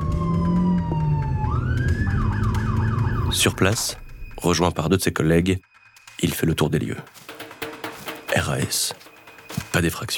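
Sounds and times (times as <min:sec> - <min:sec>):
siren of a black-and-white Dodge police car speeding with lights on: 0:00.0 - 0:04.3
speech: 0:03.4 - 0:07.2, 0:08.4 - 0:09.0, 0:09.7 - 0:10.1.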